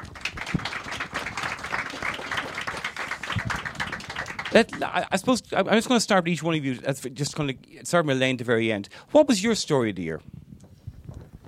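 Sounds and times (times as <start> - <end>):
audience applauding a panel of guests: 0.0 - 5.1
speech: 4.5 - 10.4.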